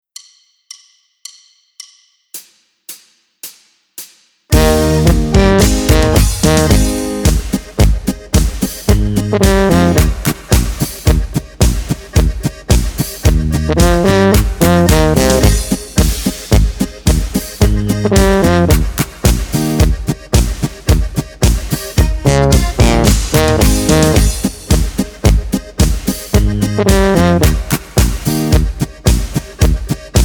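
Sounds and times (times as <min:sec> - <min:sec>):
B-flat A-flat D-flat melody with accompaniment: 0:04.5 - 0:11.9, 0:12.8 - 0:29.4.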